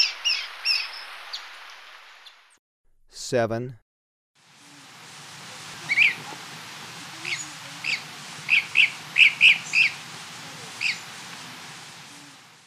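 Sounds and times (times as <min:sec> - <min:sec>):
speech: 0:03.3 - 0:03.8
dusky-capped flycatcher short sharp whistled notes in Ecuador: 0:05.9 - 0:06.2, 0:07.3 - 0:10.0.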